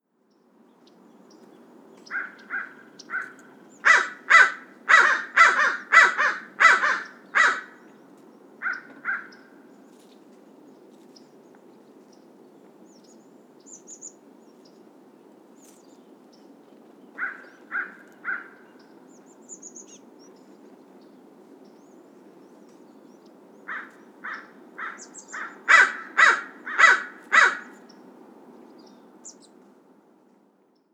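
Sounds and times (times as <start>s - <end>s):
American crow Corvus brachyrhynchos calling: 2.0s - 7.9s, 8.6s - 9.7s, 17.2s - 19.0s, 23.7s - 27.9s.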